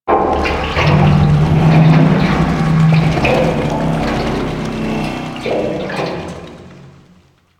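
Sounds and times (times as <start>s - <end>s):
metal pipe: 0.0s - 7.4s.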